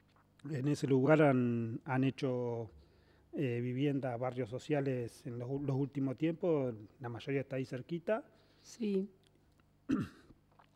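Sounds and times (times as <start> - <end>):
speech: 0.4 - 2.8, 3.4 - 9.2, 9.9 - 10.2
cough or throat clearing: 9.9 - 10.4.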